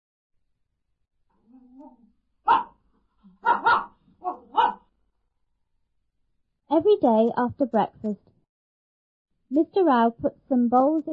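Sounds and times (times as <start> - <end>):
dog barking: 1.8 - 4.9
speech: 6.8 - 8.3, 9.5 - 11.1.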